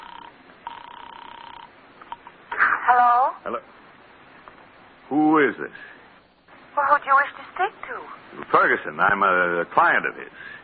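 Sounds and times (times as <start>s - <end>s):
electric telephone ringing: 0.0s - 2.2s
speech: 2.9s - 3.8s, 5.1s - 6.0s, 6.8s - 10.6s.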